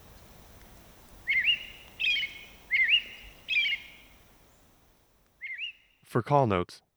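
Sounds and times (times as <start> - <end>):
American robin song of whistled phrases: 0.0 - 4.8, 5.4 - 6.0.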